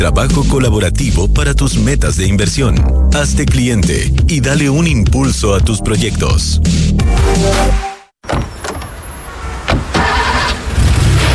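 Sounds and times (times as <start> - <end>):
speech: 0.0 - 8.5
car engine starting: 9.1 - 11.3.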